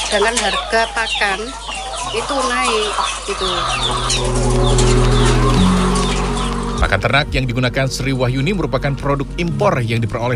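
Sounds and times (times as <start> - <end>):
laying hens clucking on an egg farm: 0.0 - 6.8
speech: 0.1 - 5.2, 6.8 - 10.3.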